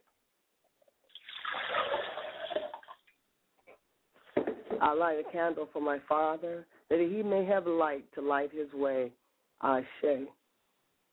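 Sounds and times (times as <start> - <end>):
water poured into a glass as a libation: 1.1 - 3.1
speech: 4.8 - 10.4.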